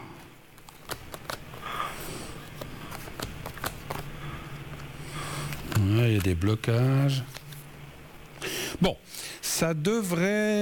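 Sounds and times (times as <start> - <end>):
steady noise: 0.0 - 10.5
tarot cards being shuffled and drawn: 0.5 - 7.8
speech: 6.0 - 7.4, 8.8 - 10.5.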